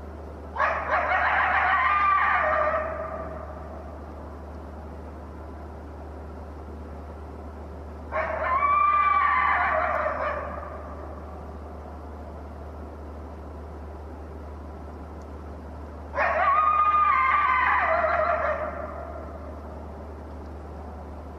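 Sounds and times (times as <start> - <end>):
constant low hum: 0.0 - 21.3
lone coyote howling: 0.6 - 3.8, 8.1 - 11.3, 16.1 - 19.7.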